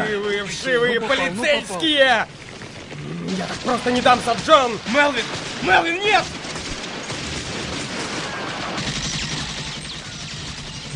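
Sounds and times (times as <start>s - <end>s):
speech: 0.4s - 2.4s, 3.0s - 6.4s
dense gunfire volley: 3.3s - 10.9s.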